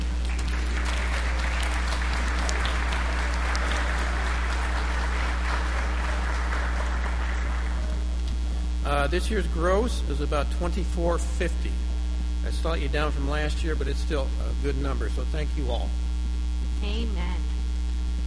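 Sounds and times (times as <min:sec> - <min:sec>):
audience applause: 0:00.0 - 0:08.2
low steady hum: 0:00.0 - 0:18.2
speech: 0:09.1 - 0:11.9, 0:12.5 - 0:16.1, 0:16.8 - 0:17.5.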